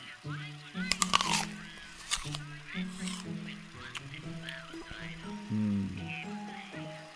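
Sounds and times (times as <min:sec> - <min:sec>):
steady low humming drone: 0:00.6 - 0:07.1
teeth crunching into a crisp fresh red fruit: 0:00.8 - 0:05.4.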